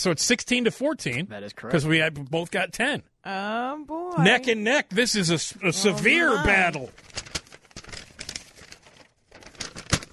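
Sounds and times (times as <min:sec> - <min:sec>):
speech: 0:00.0 - 0:07.2
paper being handled and rustled: 0:06.0 - 0:10.1.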